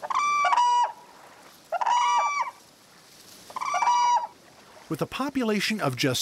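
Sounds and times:
whooping cranes bugling along the Platte River in central Nebraska: 0.0s - 5.0s
speech: 4.9s - 6.2s.

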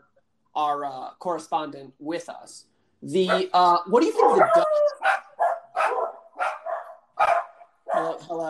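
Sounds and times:
speech: 0.6s - 5.1s, 8.2s - 8.4s
border collie and two dachshund mixes barking: 3.2s - 8.4s.

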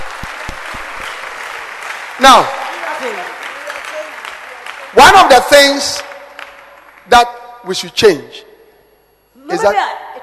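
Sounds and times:
crowd clapping: 0.0s - 7.5s
speech: 2.2s - 3.4s, 4.9s - 6.1s, 7.1s - 8.4s, 9.5s - 10.0s.

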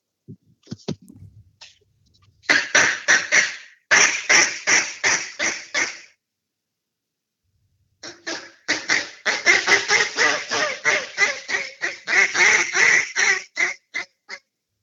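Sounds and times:
duck call quacks blown on a cut-down call with a 7-0 reed and a call: 2.5s - 6.2s, 8.0s - 14.5s.

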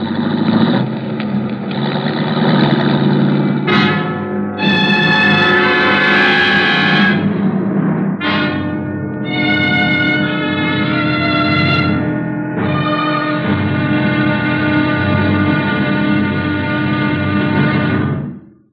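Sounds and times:
police car engine rumbling while careening into a driveway: 0.0s - 18.5s
police car horn blasts: 3.6s - 7.5s, 8.2s - 18.4s.

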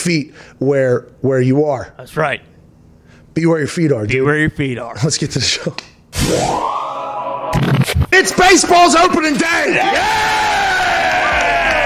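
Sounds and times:
speech: 0.0s - 2.5s, 3.4s - 6.9s, 7.5s - 10.8s
several voices yelling and whooping excitedly: 6.4s - 7.6s, 9.6s - 11.8s.

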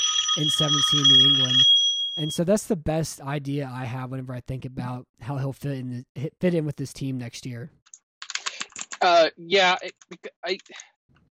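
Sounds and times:
speech: 0.4s - 7.8s, 9.0s - 11.2s
crisp computer keyboard typing: 8.2s - 9.0s.

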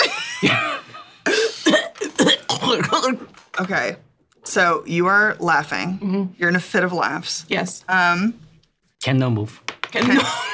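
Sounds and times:
speech: 0.4s - 0.7s, 3.7s - 8.4s, 9.0s - 10.5s
person coughing in a rough voiced fit: 0.4s - 3.2s.

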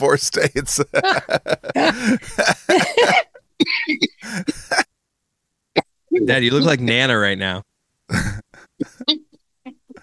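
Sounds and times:
speech: 0.0s - 3.3s, 6.2s - 8.3s
laughter: 0.4s - 3.3s
person coughing: 1.8s - 4.9s.

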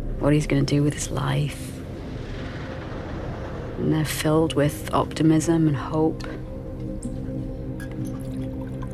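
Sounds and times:
speech: 0.2s - 1.8s, 3.8s - 6.5s
scotch pouring into a glass: 7.8s - 8.9s.

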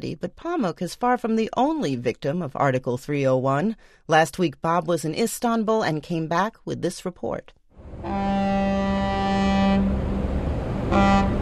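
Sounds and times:
speech: 0.0s - 8.5s
water rumbling under ferry boat: 7.8s - 11.3s
ferry boat horn tooting while crossing the Bosphorus in Istanbul: 8.0s - 11.3s
low rumble of ferry boat engine: 9.8s - 11.3s.

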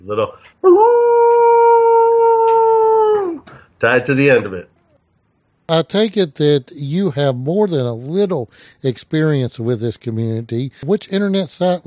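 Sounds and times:
speech: 0.0s - 1.2s, 3.8s - 4.7s, 5.7s - 11.8s
person imitating a wolf howl: 0.6s - 3.5s.

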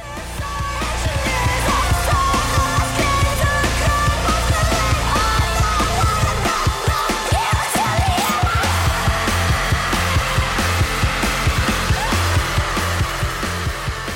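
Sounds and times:
loud dense rock song with distorted instruments: 0.0s - 14.1s
pounding drums: 0.0s - 14.1s
strained screamed vocal: 4.9s - 10.7s, 11.5s - 13.6s.

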